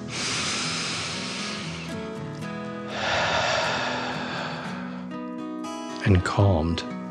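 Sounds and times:
deep slow breath in and out during a children's meditation: 0:00.0 - 0:05.3
soft sustained musical background: 0:00.0 - 0:07.1
speech: 0:06.0 - 0:06.9.

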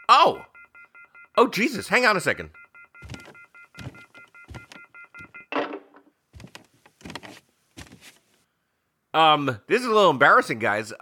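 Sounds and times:
speech: 0:00.2 - 0:00.5, 0:01.4 - 0:03.1, 0:09.2 - 0:11.0
telephone off-the-hook warning tone: 0:02.6 - 0:05.7.

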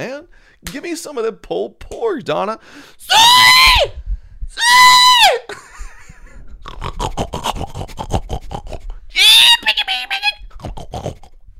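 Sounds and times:
speech: 0:00.0 - 0:04.0, 0:04.6 - 0:05.7
person imitating pig grunts, snorts and squealing oinks: 0:06.6 - 0:09.0, 0:10.4 - 0:11.4.

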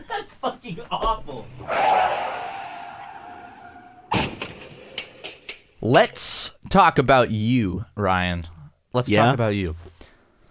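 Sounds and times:
speech: 0:00.6 - 0:01.8, 0:05.8 - 0:09.9
car tire screech: 0:01.6 - 0:04.2
car crash smash: 0:04.1 - 0:05.2.

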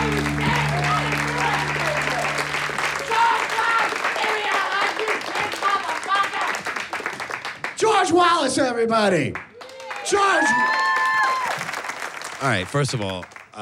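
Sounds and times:
low tone: 0:00.0 - 0:03.5
audience cheering at a stand-up comedy show in a garage: 0:00.0 - 0:06.6, 0:09.6 - 0:11.8
audience applauding at a stand-up comedy show in a garage: 0:00.0 - 0:07.8, 0:09.4 - 0:13.6
speech: 0:08.2 - 0:09.5, 0:10.1 - 0:10.8, 0:12.4 - 0:13.6.

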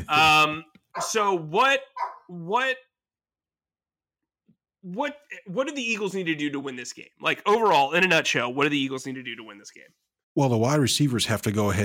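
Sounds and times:
speech: 0:00.1 - 0:02.9, 0:04.8 - 0:11.8
dog barking with whining yelping tone: 0:01.0 - 0:01.3, 0:01.9 - 0:02.3.

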